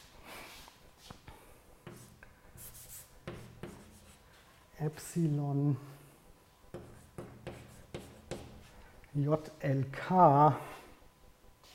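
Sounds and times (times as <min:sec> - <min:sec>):
writing on a board during a mathematics lecture: 0:01.8 - 0:04.4, 0:06.7 - 0:08.9
speech: 0:04.8 - 0:06.0, 0:09.2 - 0:10.7.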